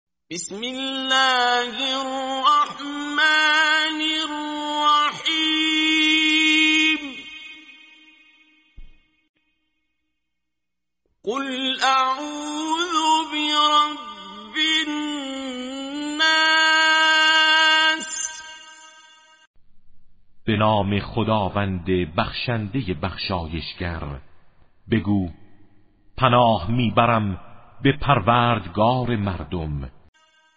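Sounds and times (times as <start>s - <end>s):
Quran recitation: 0.3s - 8.2s, 11.2s - 18.9s, 20.4s - 24.3s, 24.9s - 25.6s, 26.2s - 29.9s.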